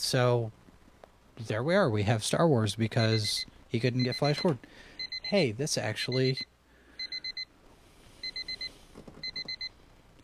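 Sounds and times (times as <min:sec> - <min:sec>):
quiet hum: 0:00.0 - 0:10.2
speech: 0:00.1 - 0:00.6, 0:01.4 - 0:06.5
countdown clock electronic alarm beeping: 0:03.0 - 0:05.4, 0:06.0 - 0:07.5, 0:08.2 - 0:10.2.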